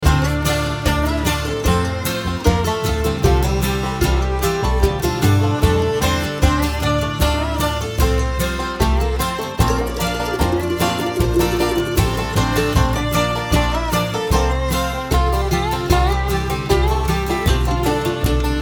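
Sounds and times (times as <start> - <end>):
fiddle: 0.0 - 18.6.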